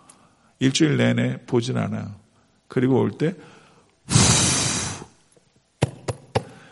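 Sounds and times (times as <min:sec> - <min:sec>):
speech: 0:00.6 - 0:04.2
forceful breathy blow of dust off a Bible: 0:04.1 - 0:05.1.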